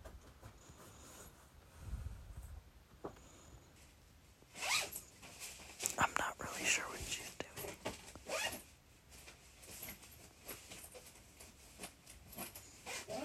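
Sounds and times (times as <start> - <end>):
soft rustles: 0.2 - 13.2
suitcase zipper pulled: 4.5 - 5.1, 8.2 - 8.7, 12.4 - 13.2.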